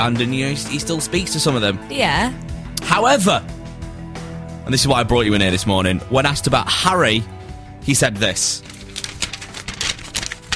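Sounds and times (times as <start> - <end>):
speech: 0.0 - 3.6, 4.7 - 8.7
paper being handled with crisp rustles and crinkles: 8.4 - 10.5.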